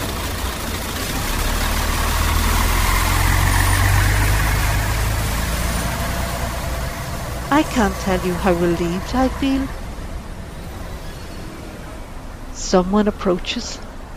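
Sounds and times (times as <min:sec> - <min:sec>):
bus engine idling and pulling away: 0:00.0 - 0:14.1
speech: 0:07.6 - 0:09.8, 0:12.7 - 0:13.9.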